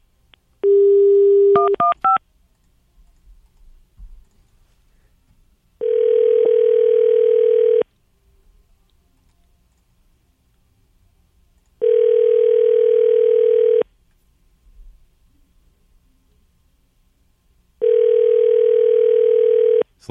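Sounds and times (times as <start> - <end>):
phone ringback tone: 0.7 - 1.9, 5.8 - 7.9, 11.8 - 13.9, 17.8 - 19.9
touch-tone keypad beeps dialling a phone: 0.7 - 2.2.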